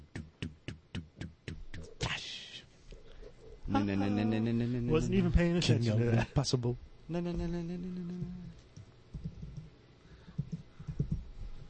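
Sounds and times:
low steady hum: 0.0 - 11.6
speech: 3.7 - 8.6
typing on a computer keyboard: 8.6 - 11.2.

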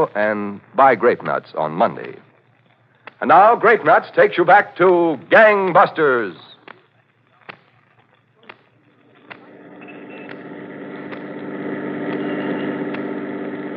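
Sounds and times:
speech: 0.0 - 2.3, 3.2 - 6.5
sharp cracks: 1.2 - 3.3, 6.4 - 9.6, 10.2 - 11.4
car engine rumbling: 9.6 - 13.7.

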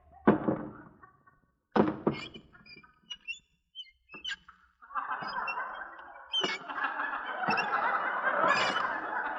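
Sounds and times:
laughter: 0.1 - 1.6, 4.8 - 9.3
shoes squeaking as someone sneaks: 2.1 - 4.6, 5.2 - 6.8.

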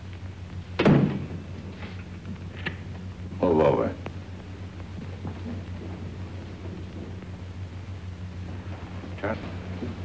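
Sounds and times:
low steady hum: 0.0 - 10.0
door kicked shut: 0.8 - 1.4
speech: 3.5 - 4.0.

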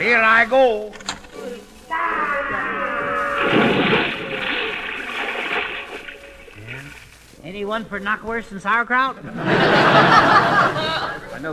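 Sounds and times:
speech: 0.0 - 1.0, 7.5 - 11.5
boiling water churning and sloshing in a pot: 2.9 - 7.4
loud splash into a huge pot of boiling water: 3.4 - 7.2
laughter: 9.2 - 11.5.

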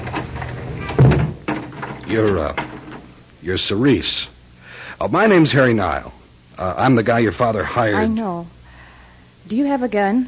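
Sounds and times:
front door swinging shut with a solid thud: 0.0 - 2.8
speech: 2.1 - 2.7, 3.4 - 4.3, 5.0 - 8.6, 9.4 - 10.2.

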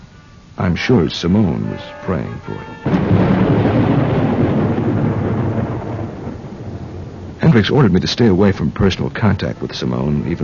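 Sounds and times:
faint rain-like hiss: 0.0 - 10.4
speech: 0.6 - 4.5, 7.6 - 10.4
thunder rumbling during a storm: 2.2 - 9.7.

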